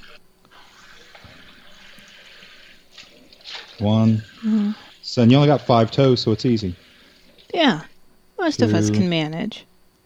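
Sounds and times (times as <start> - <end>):
water pouring into a pitcher: 0.7 - 7.6
speech: 3.8 - 6.8, 7.6 - 7.9, 8.5 - 9.7.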